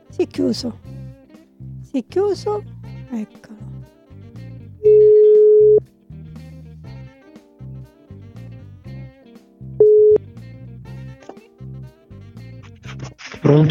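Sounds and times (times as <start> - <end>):
low rhythmic background: 0.0 - 13.6
speech: 0.1 - 0.9, 1.9 - 3.6
telephone ringing tone while placing a call: 4.8 - 5.8, 9.8 - 10.2.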